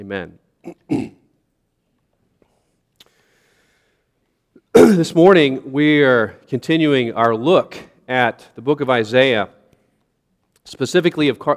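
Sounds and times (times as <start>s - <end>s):
speech: 0.0s - 1.2s, 4.8s - 9.6s, 10.6s - 11.5s
short loud cough or throat clear: 0.6s - 1.3s, 4.7s - 5.2s.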